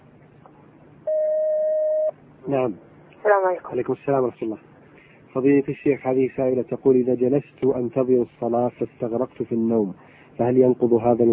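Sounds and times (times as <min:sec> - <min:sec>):
telephone line tone as a call comes in: 0:01.1 - 0:02.1
speech: 0:02.5 - 0:04.7, 0:05.3 - 0:11.3.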